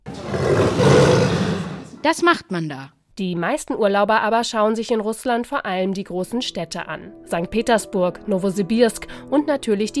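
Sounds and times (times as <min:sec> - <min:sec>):
wild Siberian tiger roaring in Russia's forests: 0:00.0 - 0:02.0
speech: 0:02.0 - 0:09.9.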